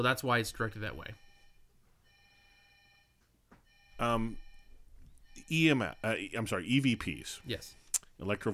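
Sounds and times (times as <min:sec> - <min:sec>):
speech: 0:00.0 - 0:01.2, 0:04.0 - 0:04.4, 0:05.4 - 0:08.5
cell phone ringtone chirping in short electronic bursts: 0:01.2 - 0:07.3.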